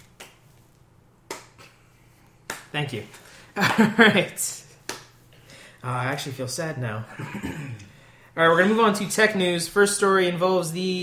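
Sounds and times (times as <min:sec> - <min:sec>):
sharp unhurried hand claps in a slow clap: 0:00.0 - 0:00.6, 0:01.2 - 0:01.8, 0:02.4 - 0:02.8, 0:04.8 - 0:05.2
speech: 0:02.7 - 0:04.6, 0:05.8 - 0:11.0.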